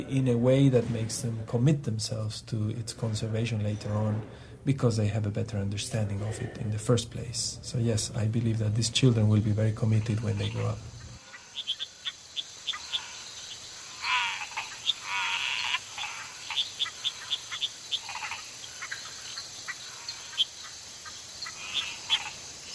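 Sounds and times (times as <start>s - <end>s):
speech: 0.0s - 10.9s
steady high insect drone: 5.9s - 22.7s
chorus of many frogs calling at night: 8.2s - 22.7s.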